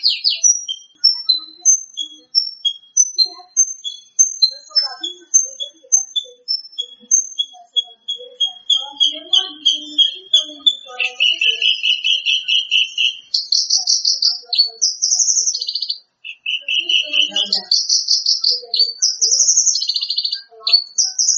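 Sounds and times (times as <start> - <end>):
greater green leafbird song of buzzy trills: 0.0 - 21.3.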